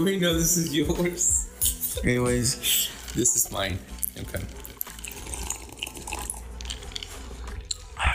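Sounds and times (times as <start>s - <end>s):
speech: 0.0s - 4.7s
wet slurping sips of a vodka and tequila mixed drink: 4.5s - 7.9s.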